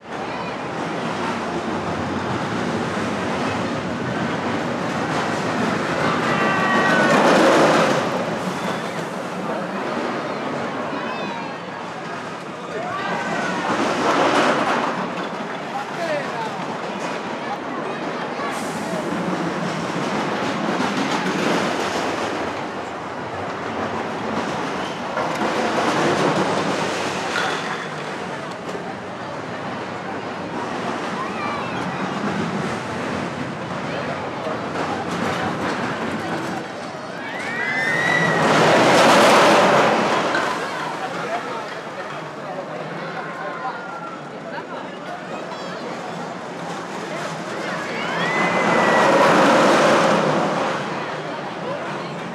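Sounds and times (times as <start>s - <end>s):
roller coaster: 0.0s - 52.3s.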